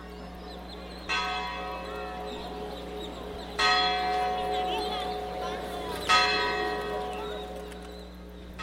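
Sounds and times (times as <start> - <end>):
steady low hum: 0.0 - 8.6
church bell tolling: 0.9 - 7.6.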